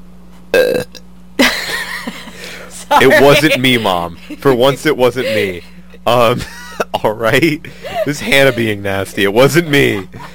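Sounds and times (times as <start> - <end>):
faint steady hum: 0.0 - 10.3
person burping: 0.5 - 1.0
laughter: 1.4 - 10.3
speech: 2.9 - 10.3.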